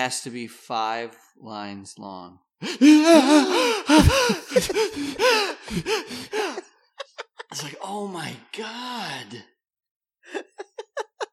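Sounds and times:
speech: 0.0s - 6.7s, 7.6s - 9.5s
voice imitating a crowd's gasp of surprise: 2.6s - 6.7s
wheezy laugh-like bursts: 2.8s - 7.5s, 10.3s - 11.3s.

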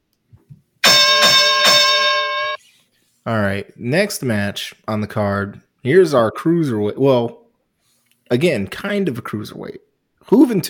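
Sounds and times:
loud bell struck: 0.8s - 2.6s
speech: 3.2s - 7.4s, 8.3s - 10.6s.

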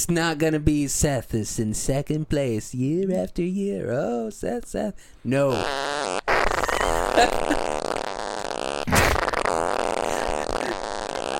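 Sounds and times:
speech: 0.0s - 6.2s, 7.2s - 7.6s
buzzy distorted fart sound effect from a phone app through a small speaker: 5.5s - 11.3s.

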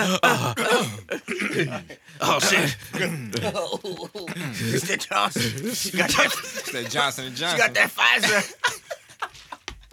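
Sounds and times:
person clearing throat: 0.0s - 3.5s
laughter: 1.4s - 9.7s
speech: 1.6s - 8.8s.

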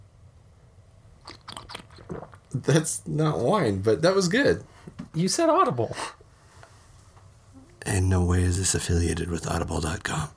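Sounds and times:
slurping sips from a mug: 1.2s - 2.5s
speech: 2.6s - 6.2s, 8.1s - 10.3s.

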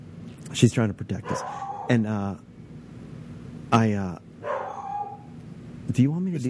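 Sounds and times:
speech: 0.5s - 2.5s, 3.7s - 4.3s, 5.9s - 6.4s
dog barking: 1.2s - 2.0s, 4.4s - 5.3s.

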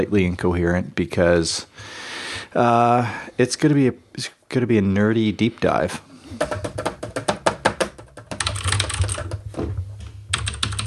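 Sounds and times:
speech: 0.0s - 6.8s
rapid typing on a computer keyboard: 6.4s - 9.4s, 10.3s - 10.8s.

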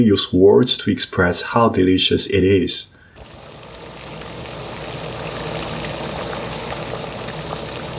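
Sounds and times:
speech: 0.0s - 3.0s
hot pot broth with lamb vegetables tofu and noodles at a rolling boil: 3.2s - 7.9s.

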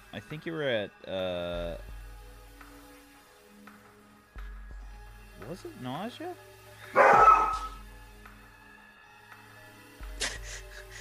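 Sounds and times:
speech: 0.1s - 2.0s, 5.4s - 6.5s
dog barking: 6.9s - 7.8s.

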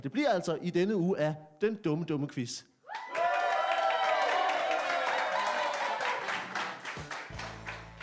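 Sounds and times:
speech: 0.0s - 3.1s
whoops: 2.9s - 6.4s
live crowd cheering: 2.9s - 8.0s.

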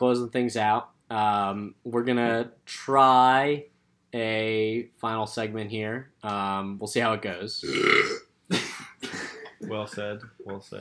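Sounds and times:
speech: 0.0s - 8.6s, 9.7s - 10.7s
loud rough gravelly burps: 7.6s - 9.4s.

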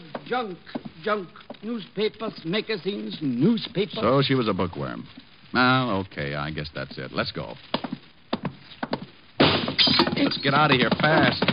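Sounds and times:
speech: 0.3s - 7.9s, 10.2s - 11.5s
gunshots from the house next door: 9.4s - 10.3s.

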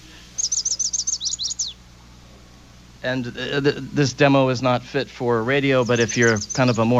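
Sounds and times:
faint low hum: 0.0s - 6.9s
recorded bird singing a high trill: 0.2s - 1.9s, 5.5s - 6.9s
speech: 3.0s - 6.9s.

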